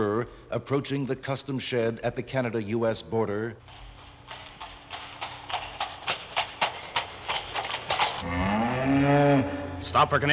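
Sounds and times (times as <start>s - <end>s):
speech: 0.0s - 4.4s, 9.1s - 10.3s
hooves clopping on a hard surface: 3.6s - 10.3s
cow mooing: 8.2s - 9.9s.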